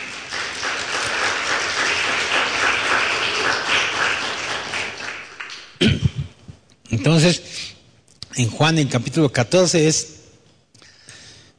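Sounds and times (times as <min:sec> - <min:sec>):
audience applauding: 0:00.0 - 0:05.8
speech: 0:07.0 - 0:07.5, 0:08.4 - 0:10.2.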